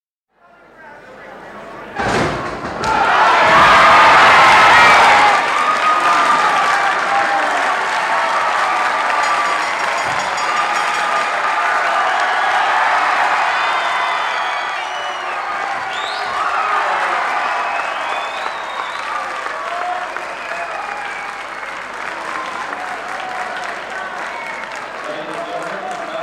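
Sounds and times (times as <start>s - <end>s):
applause after a good throw: 3.1s - 26.2s
bell into PA: 9.2s - 11.5s.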